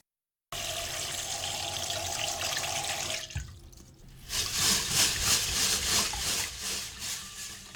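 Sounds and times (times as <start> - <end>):
water running from a tap over rice in a strainer: 0.6 - 7.7
rice grains swishing and splashing as they are rinsed in a strainer: 4.0 - 7.7.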